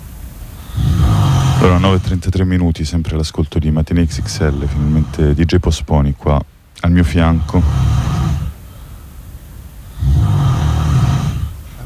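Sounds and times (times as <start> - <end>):
person snoring: 0.6 - 2.2, 4.0 - 5.5, 7.2 - 8.6, 9.9 - 11.8
speech: 1.6 - 8.0.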